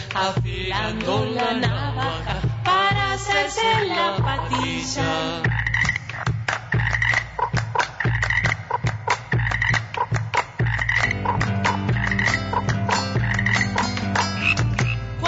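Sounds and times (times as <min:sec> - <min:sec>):
speech: 0:00.2 - 0:05.6
toads croaking at a lagoon: 0:04.0 - 0:15.1.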